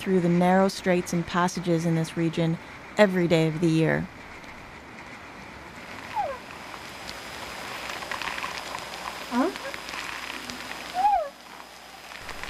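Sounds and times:
speech: 0.0 - 4.2
steady hiss of water noise: 0.0 - 12.4
whales singing underwater: 6.0 - 6.5, 7.8 - 12.2.

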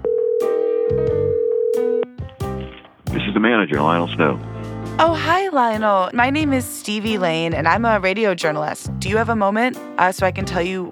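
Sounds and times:
long steady electronic telephone ringing tone over the line: 0.0 - 2.0
speech: 3.4 - 10.9.

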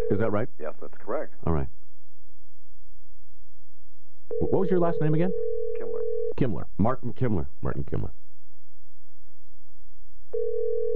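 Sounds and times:
faint noise: 0.0 - 10.9
speech: 0.1 - 1.8, 4.3 - 5.6, 6.4 - 8.2
telephone dial tone: 10.4 - 10.9.

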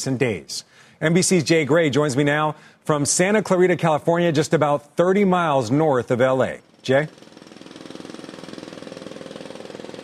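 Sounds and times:
speech: 0.0 - 7.4
jackhammer pounding during road repair in Santa Clarita California: 5.6 - 10.0.

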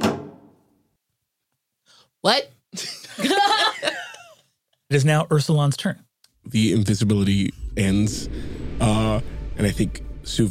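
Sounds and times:
door slamming shut: 0.0 - 0.6
speech: 2.2 - 4.1, 4.9 - 10.4
laughter: 2.8 - 4.4.

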